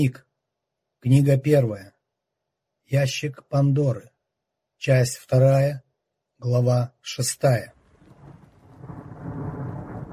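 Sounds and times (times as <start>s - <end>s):
speech: 0.0s - 0.3s, 1.0s - 1.9s, 2.9s - 4.1s, 4.8s - 5.8s, 6.4s - 7.8s
thunder from an approaching storm: 7.7s - 10.1s.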